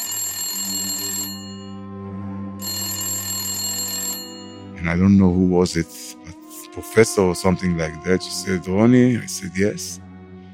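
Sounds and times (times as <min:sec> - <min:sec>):
phone ringing with a bright rattling bell tone: 0:00.0 - 0:01.8, 0:02.6 - 0:05.0
speech: 0:04.8 - 0:06.2, 0:06.8 - 0:10.0.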